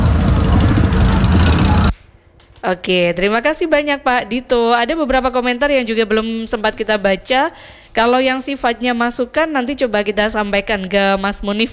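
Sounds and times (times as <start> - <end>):
many motorcycle engines idling together in a football supporters' convoy at city hall: 0.0 - 1.9
murmuring voices: 0.0 - 1.9
speech: 2.6 - 11.7.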